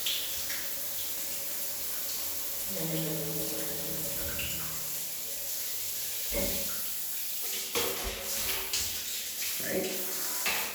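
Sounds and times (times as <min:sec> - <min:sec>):
water rushing through a narrow stick attachment fitting: 0:00.0 - 0:10.7.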